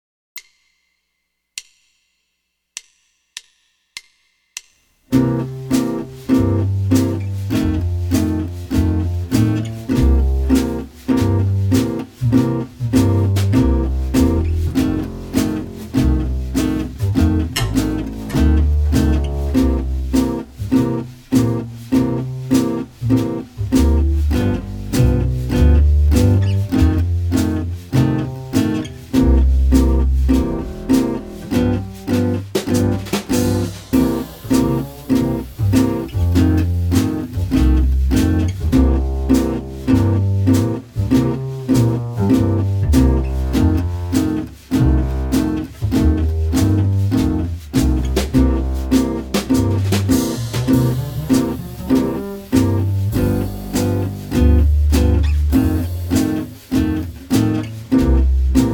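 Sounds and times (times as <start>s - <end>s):
jazz guitar playing twelve-bar blues in C: 5.1s - 58.7s.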